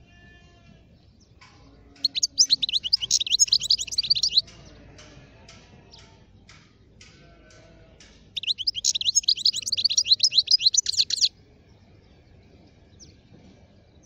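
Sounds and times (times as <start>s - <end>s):
wild European goldfinch singing high twittering and tinkling notes: 2.0s - 4.5s, 8.4s - 11.3s.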